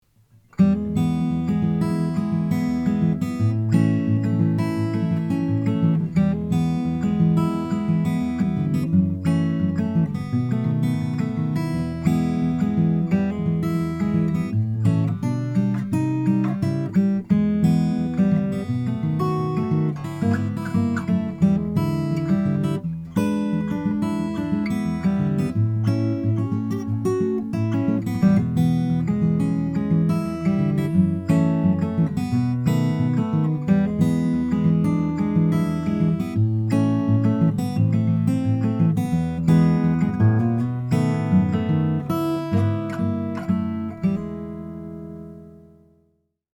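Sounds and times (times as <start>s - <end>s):
Olson SJ cutaway Indian rosewood acoustic guitar: 0.0s - 46.4s.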